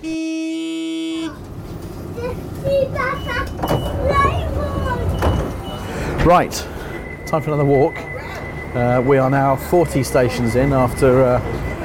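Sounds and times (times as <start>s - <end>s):
electric hum of an idling terminated train with doors open: 0.0s - 11.8s
train doors clunking: 1.3s - 11.8s
voices chattering on a railway platform: 2.0s - 11.8s
busy railway platform's rumble: 3.5s - 11.8s
speech: 6.2s - 6.7s, 7.3s - 8.1s, 8.7s - 11.6s.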